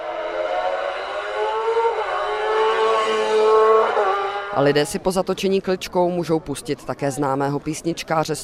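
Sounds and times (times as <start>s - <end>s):
racing car engines accelerating past: 0.0s - 4.9s
speech: 4.6s - 8.4s.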